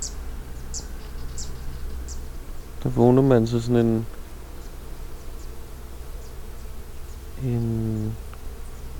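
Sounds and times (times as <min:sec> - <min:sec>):
many bees buzzing while feeding on tree catkins: 0:00.0 - 0:08.9
speech: 0:02.8 - 0:04.2.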